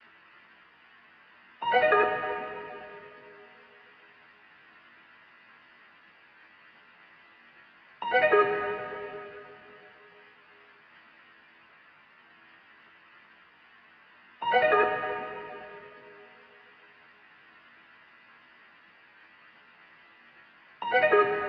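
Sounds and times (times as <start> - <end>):
G sharp minor synth pluck melody loop at 150 BPM: 1.6 - 3.6, 8.0 - 9.9, 14.4 - 16.5, 20.9 - 21.4.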